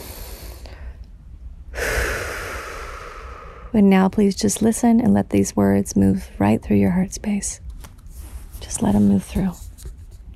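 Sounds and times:
deep breath drawn in and let out: 0:00.0 - 0:01.1, 0:01.7 - 0:03.8
speech: 0:03.7 - 0:07.6, 0:08.6 - 0:09.6.

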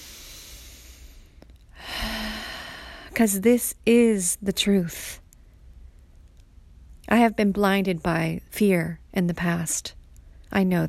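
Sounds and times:
deep breath: 0:00.0 - 0:03.2
faint steady hiss: 0:00.0 - 0:10.8
speech: 0:03.2 - 0:05.2, 0:07.1 - 0:10.8.

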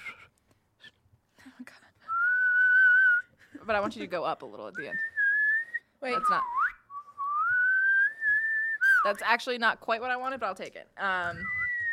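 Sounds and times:
person whistling a sustained rising note: 0:00.0 - 0:01.0, 0:02.1 - 0:03.4, 0:04.8 - 0:09.1, 0:11.3 - 0:11.9
speech: 0:03.7 - 0:05.2, 0:06.0 - 0:06.6, 0:09.0 - 0:11.6.

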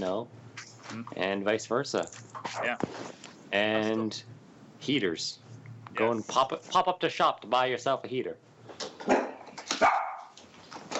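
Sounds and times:
speech: 0:00.0 - 0:09.9
dog barking: 0:09.1 - 0:10.4.

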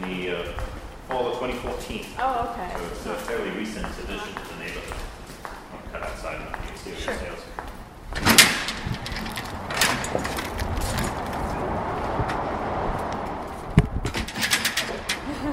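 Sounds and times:
noise from a busy space: 0:00.0 - 0:15.5
speech: 0:00.3 - 0:05.2
big heavy doors swinging shut with dull thuds: 0:08.0 - 0:11.5, 0:13.8 - 0:15.5.

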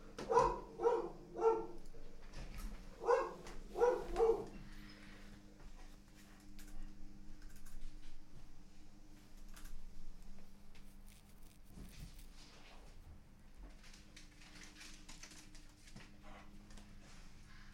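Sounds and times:
low hum: 0:00.0 - 0:17.7
dog barking and yelping: 0:00.2 - 0:01.8, 0:03.0 - 0:04.6.

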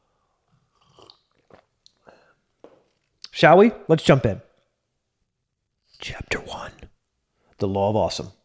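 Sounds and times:
sipping coffee with slurping and swallowing: 0:00.5 - 0:02.1
speech: 0:03.4 - 0:04.4, 0:07.6 - 0:08.4.

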